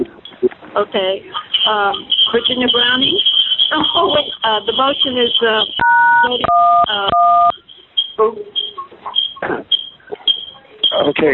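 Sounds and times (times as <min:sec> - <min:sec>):
people talking over a phone line: 0:00.0 - 0:07.6, 0:08.2 - 0:11.3
speech: 0:00.8 - 0:07.6, 0:08.2 - 0:09.8, 0:10.9 - 0:11.3
telephone keypad button tone on a phone meeting: 0:05.8 - 0:07.6.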